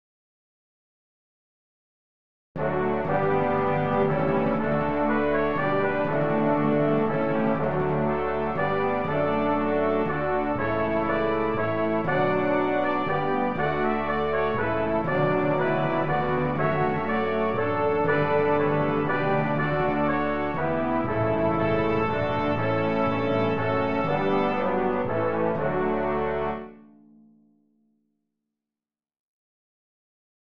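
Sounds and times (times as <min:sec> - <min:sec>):
hymn: 0:02.6 - 0:26.7.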